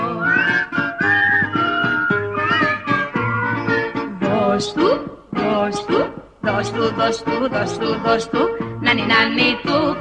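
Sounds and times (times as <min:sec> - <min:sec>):
person whistling a lively wavering melody: 0:00.0 - 0:03.4
rhythmic instrumental accompaniment with bouncing bass line: 0:00.0 - 0:09.9
speech: 0:06.6 - 0:09.9.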